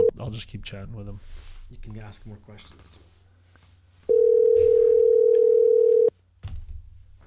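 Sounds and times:
speech: 0.3 - 3.1
steady phone tone after a call cuts off: 4.1 - 6.1.

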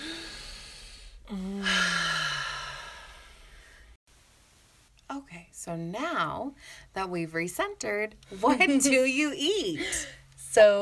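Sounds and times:
deep breath drawn in and let out as a sigh: 0.0 - 4.0
speech: 5.6 - 10.8.

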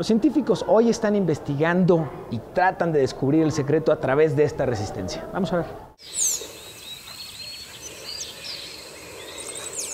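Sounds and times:
speech: 0.0 - 6.3
forest birds calling with high chirps and short whistles: 6.0 - 9.9
woodpecker in a forest: 6.0 - 9.9.

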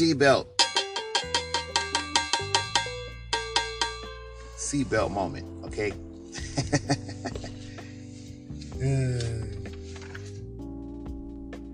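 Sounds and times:
speech: 0.0 - 0.5, 4.7 - 7.4, 8.8 - 9.6
bright metallic bell strikes: 0.6 - 5.9
laughter: 6.4 - 7.7.

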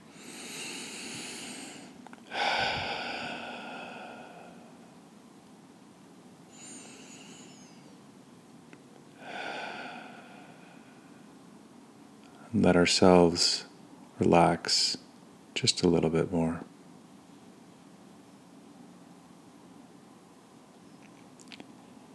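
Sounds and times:
slow deep breathing during a guided relaxation exercise: 0.0 - 5.0, 6.5 - 7.9, 9.2 - 11.3
speech: 12.6 - 15.0, 15.6 - 16.7.

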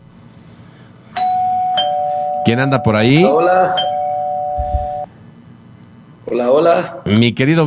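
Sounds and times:
electronic telephone ringing tone of an outgoing call being dialed: 1.2 - 5.1
speech: 2.5 - 3.9, 6.3 - 7.6.

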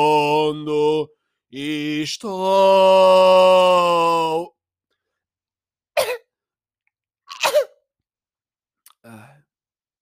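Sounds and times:
speech: 0.0 - 4.5
harsh coughs: 6.0 - 6.3, 7.3 - 7.8.

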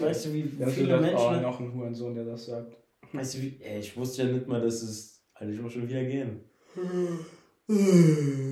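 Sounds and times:
speech: 0.0 - 8.4
person yawning: 6.7 - 8.4.

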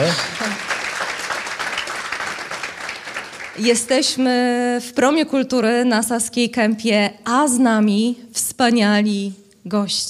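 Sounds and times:
audience applause at a cultural centre in Saska Kępa: 0.0 - 3.9
speech: 3.6 - 10.0.

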